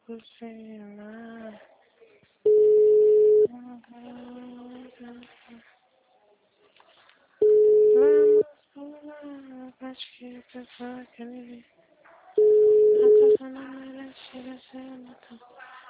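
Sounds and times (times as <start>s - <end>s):
speech: 0.1s - 1.7s, 10.6s - 11.8s
telephone busy tone beeps: 2.5s - 3.5s, 7.4s - 8.4s, 12.4s - 13.4s
recorded voice message in Portuguese: 7.4s - 8.5s, 12.4s - 13.9s.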